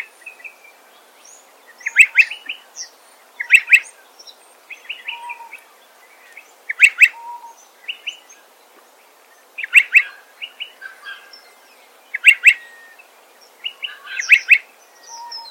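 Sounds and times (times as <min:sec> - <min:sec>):
Striated Pardalote sharp paired calls: 0:01.8 - 0:02.6, 0:03.4 - 0:03.9, 0:06.7 - 0:08.2, 0:09.6 - 0:11.3, 0:12.1 - 0:13.0, 0:13.6 - 0:15.4.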